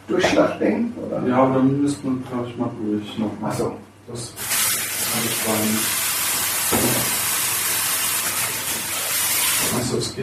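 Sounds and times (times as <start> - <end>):
speech: 0.1 - 4.5, 5.2 - 6.0, 6.7 - 7.2, 9.7 - 10.2
running tap water rinsing lettuce leaves: 4.4 - 10.0.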